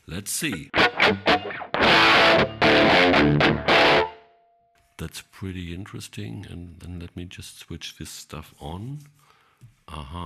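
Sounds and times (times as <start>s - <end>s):
speech: 0.1s - 4.1s, 5.0s - 9.3s, 9.9s - 10.2s
heavily distorted electric guitar chords through an amp with graphic EQ and reverb: 0.6s - 4.3s.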